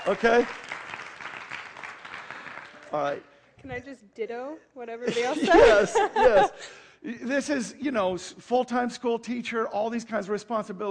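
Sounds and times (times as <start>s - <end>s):
speech: 0.0s - 0.6s, 2.9s - 10.8s
audience applauding a woman: 0.0s - 3.2s
laughter: 5.1s - 6.8s.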